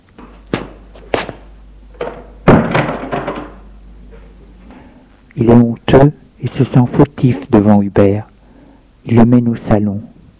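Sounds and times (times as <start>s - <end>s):
door shutting with a heavy thud: 2.0s - 3.7s
speech: 5.4s - 8.3s, 9.0s - 10.1s.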